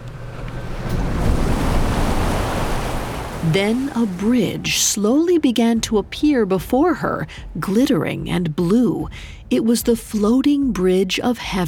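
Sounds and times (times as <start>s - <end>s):
waves washing small rocks onto the shore: 0.2s - 5.3s
speech: 3.4s - 11.6s.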